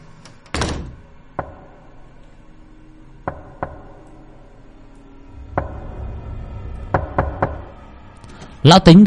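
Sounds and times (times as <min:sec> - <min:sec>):
low steady hum: 0:00.0 - 0:09.0
knocking on a house door at night: 0:01.4 - 0:01.8, 0:03.2 - 0:04.0, 0:05.5 - 0:06.2, 0:06.8 - 0:07.9.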